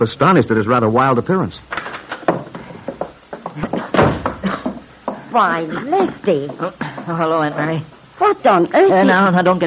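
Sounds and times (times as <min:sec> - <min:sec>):
speech: 0:00.0 - 0:01.8, 0:05.3 - 0:09.6
loud thumps and rattling knocks: 0:01.7 - 0:05.2
kitchen door bursting open: 0:03.9 - 0:04.5.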